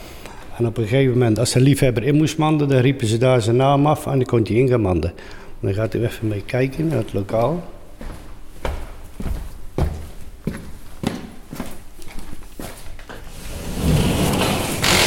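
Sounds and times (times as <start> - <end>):
speech: 0.6 - 7.8
footsteps on hard floor: 6.8 - 13.3
door being opened: 13.8 - 15.0.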